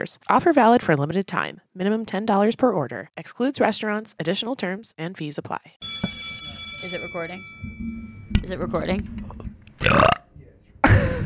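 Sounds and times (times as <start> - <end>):
speech: 0.0 - 5.9, 6.8 - 9.3
loud burps: 9.8 - 10.4.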